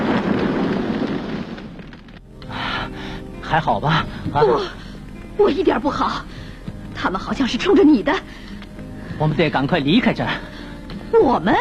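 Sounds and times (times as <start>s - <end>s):
car exploding in mid-air as it plunges toward the sea: 0.0s - 2.2s
speech: 3.5s - 4.8s, 5.4s - 6.4s, 7.0s - 8.4s, 9.2s - 10.5s, 11.1s - 11.5s.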